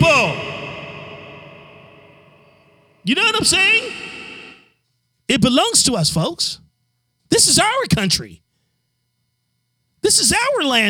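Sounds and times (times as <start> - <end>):
reverb echo tail on voice: 0.0 - 4.6
speech: 3.0 - 4.2, 5.3 - 6.6, 7.3 - 8.4, 10.0 - 10.8.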